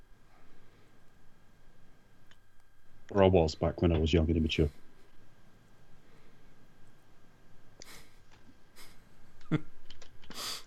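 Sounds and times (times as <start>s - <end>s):
low hum: 0.0s - 10.6s
speech: 3.1s - 4.8s
typing on a computer keyboard: 9.8s - 10.6s.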